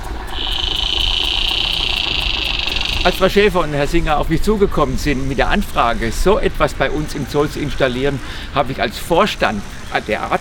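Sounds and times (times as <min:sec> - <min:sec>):
chorus of birds: 0:00.0 - 0:03.6
faint regular ticking pulse: 0:00.0 - 0:10.3
insect chorus: 0:00.0 - 0:10.3
low rumbling outdoor background: 0:00.0 - 0:10.3
saddle bush-cricket stridulating in a high-pitched buzz: 0:00.0 - 0:10.3
speech: 0:03.0 - 0:10.3.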